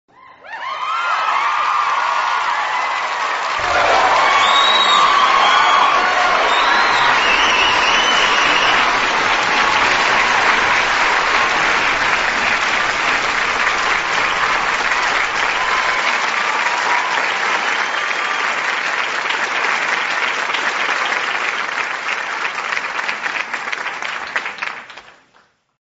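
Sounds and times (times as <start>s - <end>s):
people clapping: 0.6s - 25.7s
whistles: 3.6s - 11.4s, 17.6s - 18.6s.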